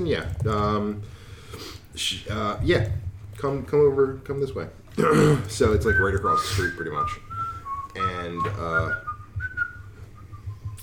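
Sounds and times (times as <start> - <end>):
speech: 0.0 - 7.3, 8.0 - 9.1
person whistling a melodic movie tune: 5.8 - 10.8.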